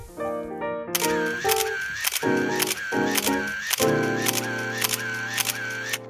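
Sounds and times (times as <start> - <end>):
camera shutter clicking while photographing freshly baked bread: 1.0 - 6.0
steady tonal background: 1.0 - 6.0.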